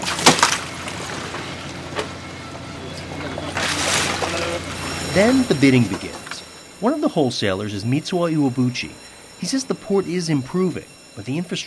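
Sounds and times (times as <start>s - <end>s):
bonito fish splashing into plastic bins of ice water at a port: 0.0s - 1.6s, 3.5s - 5.0s
steady busy hum: 0.0s - 11.6s
speech: 5.2s - 6.2s, 6.8s - 11.6s.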